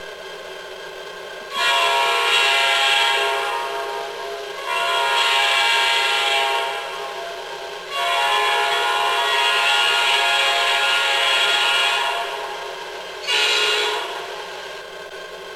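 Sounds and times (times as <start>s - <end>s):
diesel train whistle: 1.5s - 14.6s.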